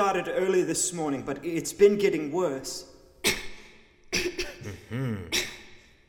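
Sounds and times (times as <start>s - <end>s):
speech: 0.0s - 3.5s, 4.2s - 5.4s
person coughing in rough hacking bursts: 4.2s - 5.8s.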